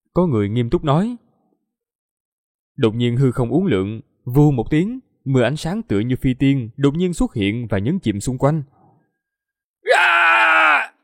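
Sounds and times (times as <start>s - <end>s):
speech: 0.2s - 1.2s, 2.8s - 8.8s
scream of agony: 9.8s - 11.0s.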